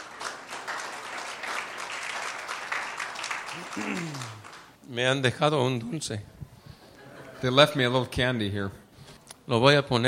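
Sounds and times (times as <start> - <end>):
church congregation applause: 0.0 - 4.7
speech: 3.6 - 6.4, 7.4 - 8.8, 9.5 - 10.0.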